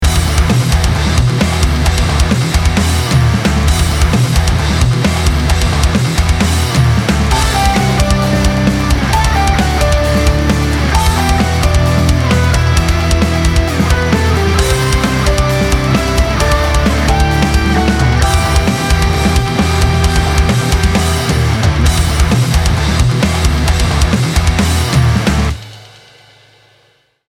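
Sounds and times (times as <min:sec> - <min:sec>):
emotional rock music: 0:00.0 - 0:25.6.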